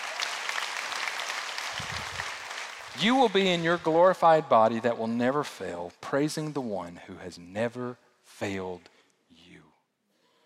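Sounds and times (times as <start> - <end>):
church congregation applauding during a sermon: 0.0 - 4.2
speech: 3.0 - 8.9.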